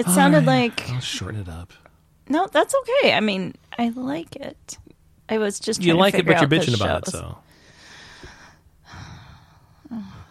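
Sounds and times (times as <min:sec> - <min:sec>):
person yawning: 0:00.0 - 0:00.8
speech: 0:00.0 - 0:07.5, 0:09.9 - 0:10.2.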